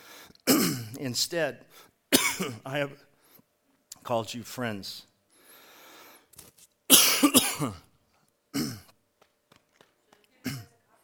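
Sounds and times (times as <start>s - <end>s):
man clearing his throat: 0.5s - 1.0s, 2.1s - 2.6s, 6.9s - 7.9s, 8.5s - 9.0s, 10.4s - 10.7s
man coughing: 0.5s - 1.0s, 2.1s - 2.6s, 6.9s - 7.9s, 8.5s - 8.9s
speech: 1.0s - 3.1s, 4.0s - 5.1s, 7.2s - 7.9s.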